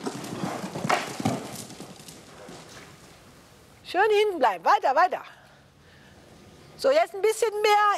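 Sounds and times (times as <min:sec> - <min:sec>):
horse hooves clip-clopping on the ground: 0:00.0 - 0:03.4
faint noise: 0:00.0 - 0:07.9
speech: 0:03.9 - 0:05.4, 0:06.8 - 0:07.9.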